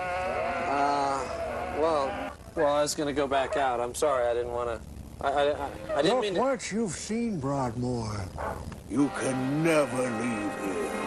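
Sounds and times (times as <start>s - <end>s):
sheep bleating at Broadmoor: 0.0s - 2.4s
speech: 1.8s - 11.0s.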